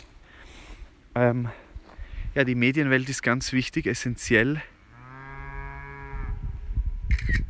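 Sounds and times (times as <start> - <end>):
speech: 1.2 - 1.6, 2.4 - 4.7
cow mooing on a pasture: 4.9 - 6.4.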